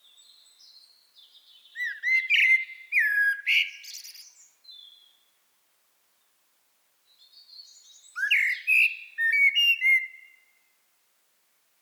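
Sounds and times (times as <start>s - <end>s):
common blackbird Turdus merula singing fluty whistles: 0.1s - 5.2s, 7.2s - 10.4s.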